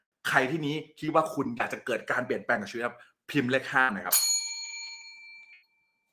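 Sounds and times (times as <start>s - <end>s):
speech: 0.3s - 4.3s
bell ringing: 4.1s - 5.8s.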